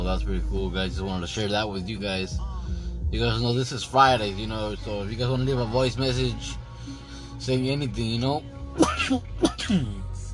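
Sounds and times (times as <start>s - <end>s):
speech: 0.1s - 10.0s
throaty coughs: 8.8s - 10.0s.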